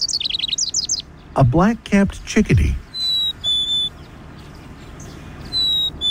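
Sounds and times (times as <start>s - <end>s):
red-breasted nuthatch giving short nasal horn-like calls: 0.0s - 1.4s, 2.8s - 6.0s
steady low outdoor hiss: 0.0s - 6.0s
speech: 1.4s - 2.8s.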